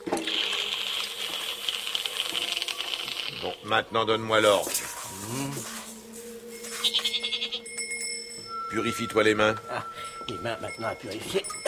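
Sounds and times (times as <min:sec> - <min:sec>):
burning brand dipped into water sizzling: 0:00.2 - 0:07.8
speech: 0:03.4 - 0:05.7, 0:08.7 - 0:11.6.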